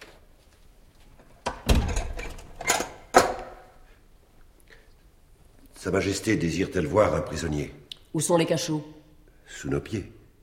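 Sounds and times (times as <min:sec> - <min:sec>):
heavy door being pushed shut: 0:01.5 - 0:02.4
speech: 0:05.8 - 0:10.2.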